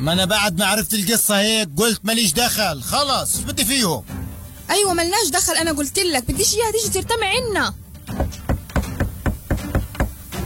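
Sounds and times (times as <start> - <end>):
speech: 0.0 - 8.3
knocking on a door: 8.1 - 10.2.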